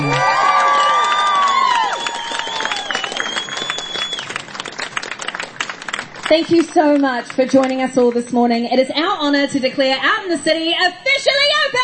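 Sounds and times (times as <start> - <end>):
crowd cheering and whooping: 0.0 - 4.5
crowd applauding: 0.0 - 8.3
speech: 6.3 - 11.8.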